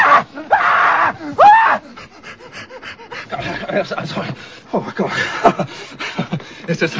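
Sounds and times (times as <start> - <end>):
man yelling in panic: 0.0 - 1.8
man's breathy gasps and whimpers: 1.2 - 6.9
laughter: 3.2 - 6.9
speech: 3.7 - 6.9.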